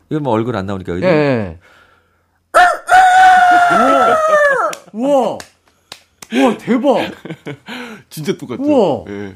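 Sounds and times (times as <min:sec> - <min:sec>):
speech: 0:00.1 - 0:01.8, 0:04.9 - 0:05.5, 0:06.3 - 0:09.3
person imitating a rooster's crow: 0:02.6 - 0:05.2
laughter: 0:03.4 - 0:04.4, 0:06.3 - 0:07.8.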